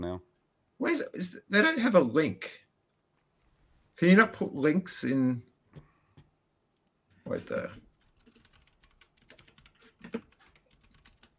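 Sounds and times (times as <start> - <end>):
speech: 0.2 - 2.6, 4.0 - 5.5, 7.3 - 7.8
typing on a computer keyboard: 7.9 - 11.3.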